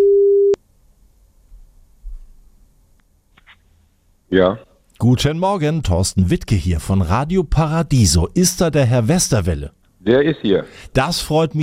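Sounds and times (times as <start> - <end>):
telephone ringing tone from an outgoing call: 0.0 - 0.6
speech: 4.3 - 11.6.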